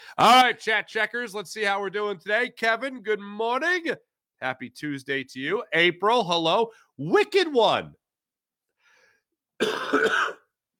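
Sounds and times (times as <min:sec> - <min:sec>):
speech: 0:00.1 - 0:08.0, 0:09.6 - 0:10.4
harsh raspy cough: 0:09.6 - 0:10.6.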